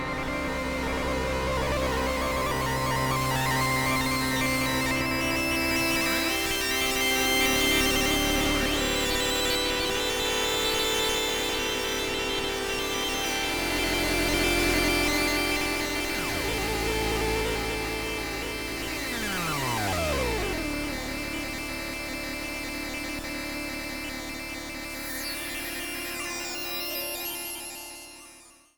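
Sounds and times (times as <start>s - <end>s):
drone in C: 0.0s - 27.7s.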